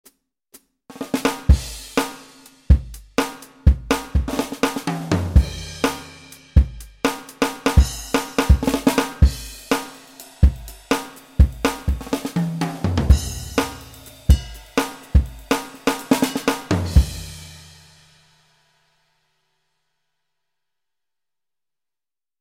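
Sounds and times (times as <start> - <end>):
70s jazz funk drum kit on a synthesizer module: 0.9 - 18.0.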